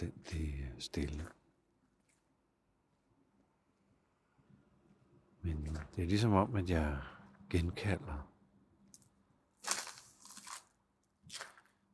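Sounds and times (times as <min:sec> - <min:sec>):
speech: 0:00.0 - 0:01.4, 0:05.4 - 0:08.3
footsteps crunching ice on frozen puddles at the lock at Sluseholmen: 0:09.6 - 0:11.8.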